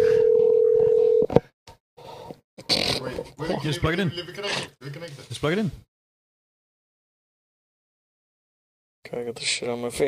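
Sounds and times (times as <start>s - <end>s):
telephone dial tone: 0.0s - 1.3s
speech: 3.6s - 5.9s, 9.1s - 10.0s.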